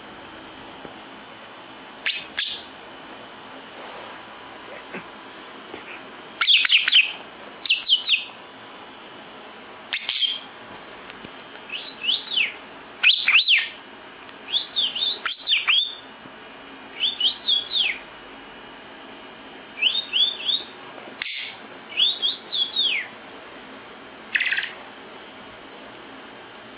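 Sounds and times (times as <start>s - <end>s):
lovebird giving shrill sharp chirps: 2.0s - 2.7s, 6.4s - 8.4s, 9.9s - 10.5s, 11.7s - 13.8s, 14.5s - 16.1s, 17.0s - 18.1s, 19.8s - 23.2s, 24.3s - 24.8s.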